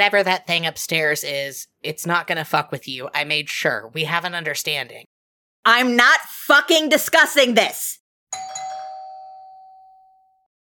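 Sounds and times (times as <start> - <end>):
speech: 0.0 - 8.6
doorbell chiming ding-dong with a ringing tone: 8.3 - 10.5.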